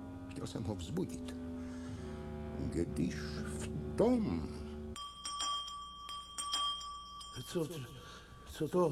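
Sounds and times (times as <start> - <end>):
speech: 0.4 - 1.5, 2.6 - 4.6, 7.4 - 8.8
electric bell ringing: 5.0 - 8.8.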